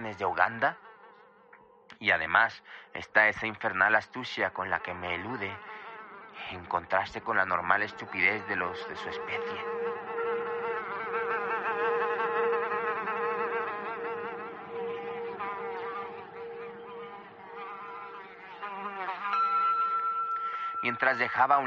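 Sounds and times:
speech: 0:00.1 - 0:00.9, 0:02.0 - 0:05.8, 0:06.4 - 0:09.9, 0:20.9 - 0:21.6
insect buzzing in flight: 0:00.3 - 0:01.5, 0:04.6 - 0:20.3.

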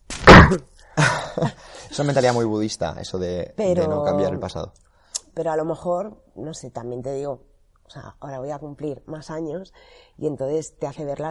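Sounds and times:
person sneezing: 0:00.1 - 0:00.6
speech: 0:00.5 - 0:04.8, 0:05.4 - 0:11.3.

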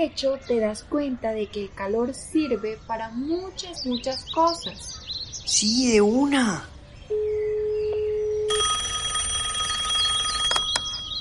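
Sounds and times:
speech: 0:00.0 - 0:07.3
steady telephone dial tone: 0:07.1 - 0:11.0
loud buzzing electronic telephone ring: 0:07.1 - 0:11.1
sharp telephone clicks as a call is picked up: 0:09.7 - 0:11.1.

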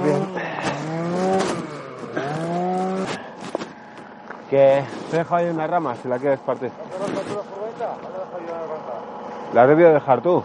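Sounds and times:
scraping noises: 0:00.0 - 0:08.6
van engine running: 0:00.0 - 0:10.4
speech: 0:04.5 - 0:08.1, 0:09.5 - 0:10.4.

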